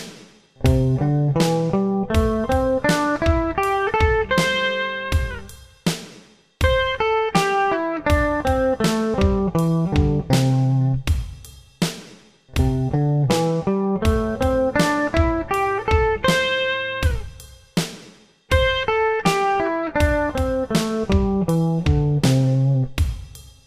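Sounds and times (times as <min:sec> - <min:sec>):
C major pentatonic scale exercise in eighth notes: 0:00.6 - 0:05.5, 0:06.6 - 0:11.0, 0:12.6 - 0:17.4, 0:18.5 - 0:23.0.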